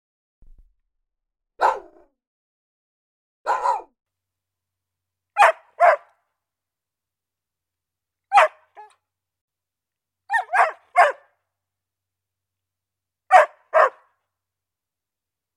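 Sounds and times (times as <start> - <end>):
dog barking: 1.6 - 2.2, 3.4 - 4.0, 5.4 - 6.2, 8.3 - 9.0, 10.3 - 11.4, 13.3 - 14.2.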